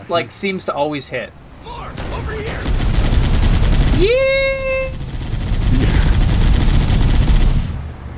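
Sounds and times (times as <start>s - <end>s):
speech: 0.1s - 2.6s, 4.0s - 4.3s
video game gunfire: 1.9s - 7.9s.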